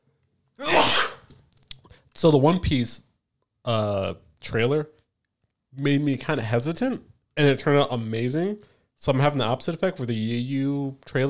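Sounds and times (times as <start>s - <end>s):
breathy sniff: 0.6s - 1.3s
loud sneeze: 0.6s - 1.3s
speech: 2.2s - 5.0s, 5.7s - 11.2s.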